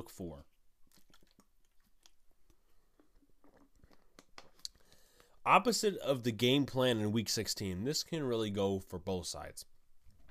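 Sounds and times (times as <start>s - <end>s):
speech: 0.0s - 0.5s, 5.5s - 9.7s
small swallowing noises: 0.8s - 4.8s
person sipping from a drink: 0.8s - 5.4s.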